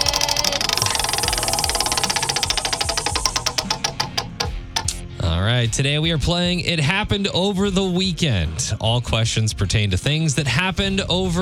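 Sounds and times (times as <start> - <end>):
prize wheel spun for a game clicking: 0.0 - 5.0
speech: 5.6 - 11.4.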